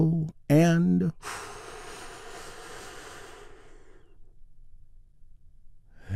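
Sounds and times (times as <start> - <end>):
speech: 0.0 - 1.5
deep breath in and out: 1.2 - 4.4, 5.9 - 6.1.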